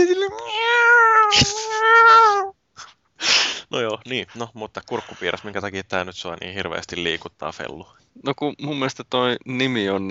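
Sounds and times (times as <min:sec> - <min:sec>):
kitten meowing: 0:00.3 - 0:02.5
speech: 0:03.7 - 0:10.0.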